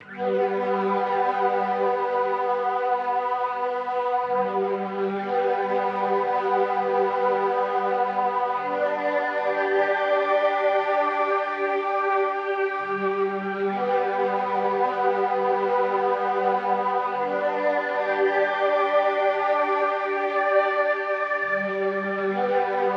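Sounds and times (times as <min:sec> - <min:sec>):
mellotron: 0:00.0 - 0:22.9.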